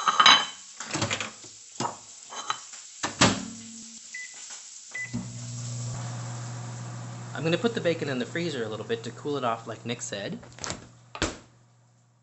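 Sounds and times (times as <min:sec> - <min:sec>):
kitchen clatter of dishes and utensils: 0:00.0 - 0:03.5
microwave oven running, melting dark organic cacao chocolate: 0:05.0 - 0:12.2
speech: 0:07.4 - 0:10.7.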